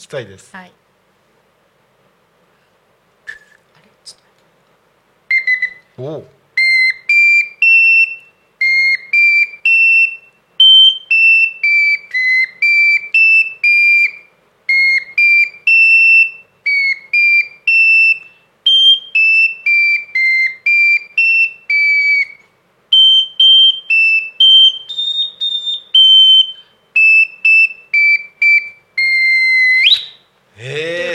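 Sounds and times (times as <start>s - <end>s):
speech: 0.0s - 0.8s, 6.0s - 6.4s
tiny shrill wind instrument playing a scale: 6.6s - 30.1s.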